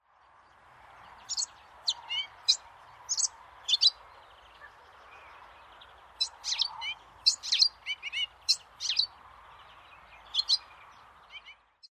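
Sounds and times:
melodious warbler: 1.2s - 5.2s, 6.1s - 11.6s.

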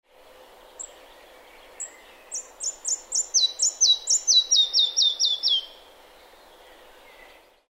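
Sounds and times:
red-breasted flycatcher: 0.7s - 5.9s.

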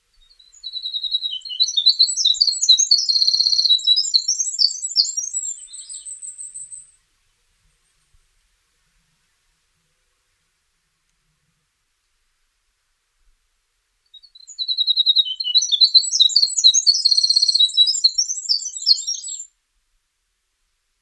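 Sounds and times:
winter wren: 0.2s - 7.0s, 14.1s - 19.5s.

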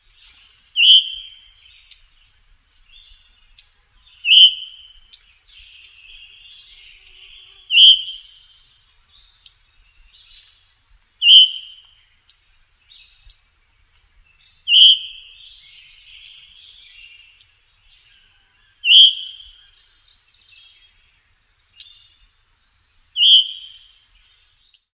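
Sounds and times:
veery call: 0.8s - 2.0s, 4.2s - 5.2s, 5.8s - 8.4s, 11.2s - 12.0s, 14.6s - 17.6s, 18.2s - 20.0s, 23.2s - 24.0s.

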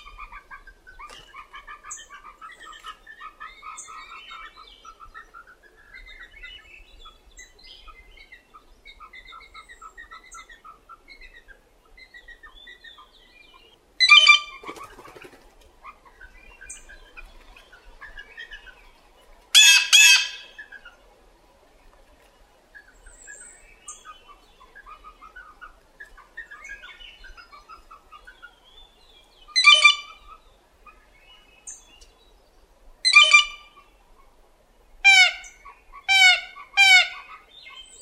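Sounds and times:
blue jay calling: 14.0s - 14.6s, 19.6s - 20.6s, 29.5s - 30.2s, 33.1s - 33.7s, 35.1s - 38.0s.

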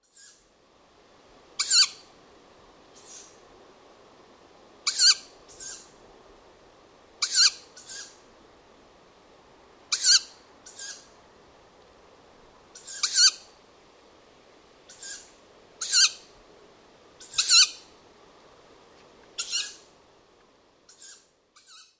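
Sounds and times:
tawny owl: 0.0s - 0.4s, 1.6s - 2.1s, 3.0s - 3.4s, 4.8s - 5.9s, 7.2s - 8.2s, 9.9s - 11.1s, 12.8s - 13.5s, 14.9s - 16.3s, 17.2s - 17.9s, 19.4s - 19.9s, 20.9s - 21.9s.

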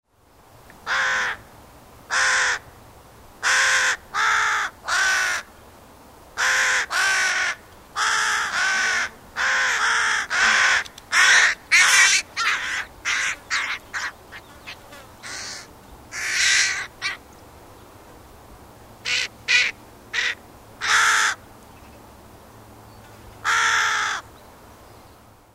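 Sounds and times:
carrion crow calling: 0.8s - 1.4s, 2.1s - 2.7s, 3.4s - 5.5s, 6.4s - 17.2s, 19.0s - 21.4s, 23.4s - 24.3s.

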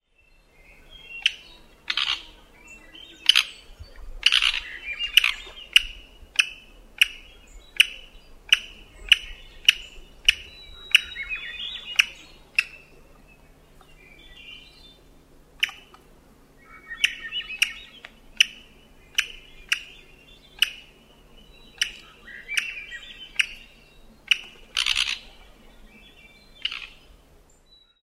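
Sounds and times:
black-backed woodpecker: 1.2s - 2.3s, 3.2s - 3.6s, 4.2s - 12.9s, 15.6s - 16.1s, 16.9s - 21.0s, 21.7s - 25.5s.

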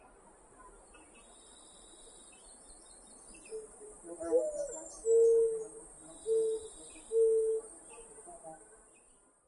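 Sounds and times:
steady high-pitched hiss: 0.0s - 9.3s
mourning dove cooing: 3.4s - 7.8s.

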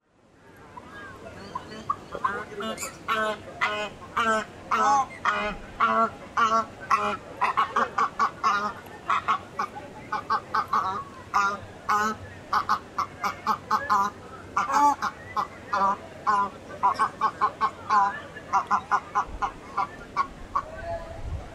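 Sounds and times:
Australian white ibis calling: 0.8s - 20.8s.

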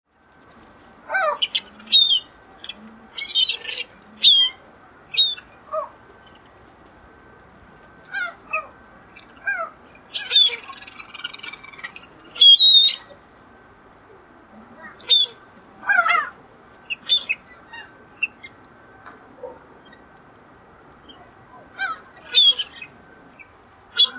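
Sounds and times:
Mediterranean gull calling: 1.1s - 6.0s, 8.0s - 13.2s, 14.8s - 18.5s, 21.1s - 24.1s.

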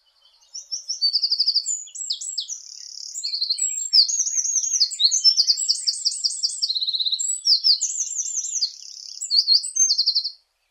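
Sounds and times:
wren: 0.0s - 10.4s.

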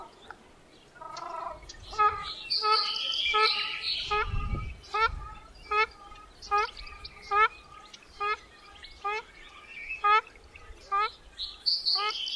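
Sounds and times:
ruddy shelduck calling: 1.0s - 9.3s, 9.9s - 10.3s, 10.9s - 11.2s, 11.9s - 12.2s.

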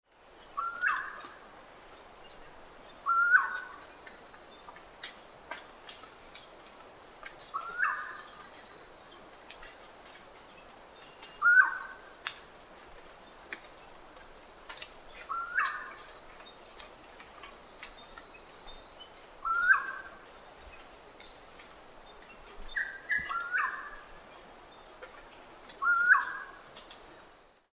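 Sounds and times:
New Caledonian friarbird calling: 0.5s - 1.4s, 2.3s - 4.8s, 7.5s - 8.9s, 11.0s - 12.1s, 15.1s - 16.6s, 17.4s - 20.2s, 22.1s - 24.2s, 24.8s - 26.9s.

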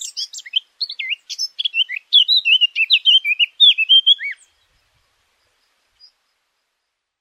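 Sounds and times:
Eurasian blackcap singing: 0.0s - 4.8s.

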